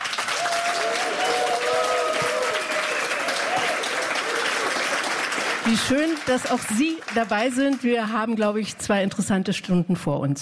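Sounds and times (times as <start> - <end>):
large live audience applauding: 0.0 - 8.3
speech: 5.7 - 10.4.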